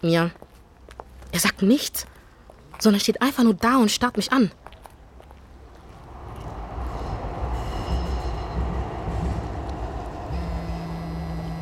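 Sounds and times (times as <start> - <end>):
speech: 0.0 - 0.4, 1.3 - 2.1, 2.8 - 4.6
train rumbling past a railway platform: 5.3 - 11.6
faint high metallic squeals from train wheels: 6.8 - 11.6.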